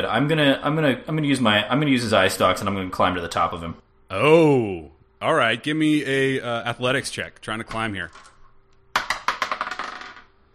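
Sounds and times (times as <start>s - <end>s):
speech: 0.0s - 8.3s
dice clattering across a table during a tabletop roleplaying game: 8.1s - 10.3s.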